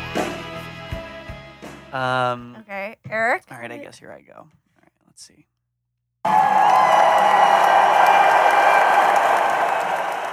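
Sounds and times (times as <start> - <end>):
speech: 1.9 - 4.6, 5.2 - 5.5
crowd applause: 6.3 - 10.3
crowd whoops and shouts: 6.3 - 10.3.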